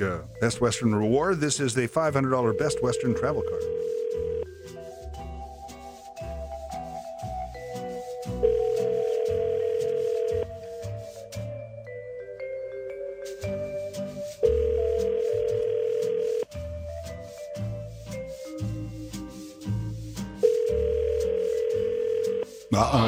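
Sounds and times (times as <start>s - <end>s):
speech: 0.0s - 4.0s
light musical bed: 0.0s - 23.0s
outgoing phone call ringback tones: 2.1s - 4.7s, 7.9s - 11.4s, 13.0s - 16.5s, 20.4s - 22.7s.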